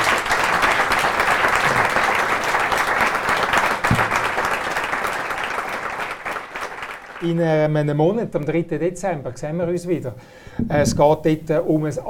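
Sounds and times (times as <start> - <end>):
audience applause: 0.0 - 7.4
speech: 7.2 - 12.0.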